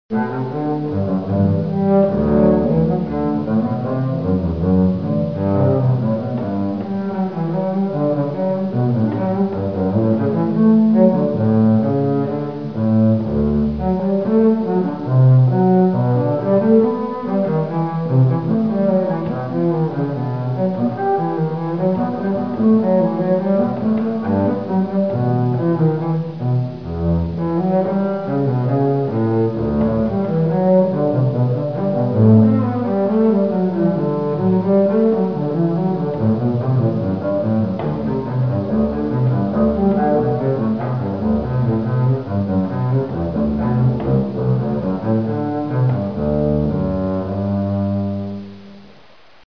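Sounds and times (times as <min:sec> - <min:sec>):
solo double bass piece: 0:00.1 - 0:49.4.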